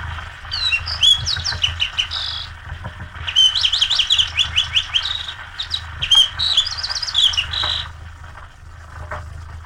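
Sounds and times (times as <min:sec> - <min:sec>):
low rumbling hum: 0:00.0 - 0:09.6
sparrow singing loud melodious phrases: 0:00.5 - 0:02.6, 0:03.3 - 0:07.9.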